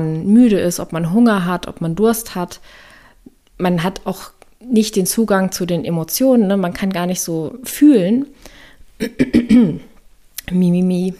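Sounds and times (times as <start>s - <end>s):
speech: 0.0s - 2.9s, 3.6s - 9.9s, 10.5s - 11.1s
throat clearing: 9.0s - 9.9s.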